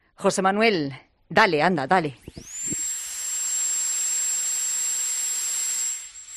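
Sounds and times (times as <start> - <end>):
speech: 0.2 - 2.5
dentist's high-speed turbine drill whining: 2.2 - 6.3.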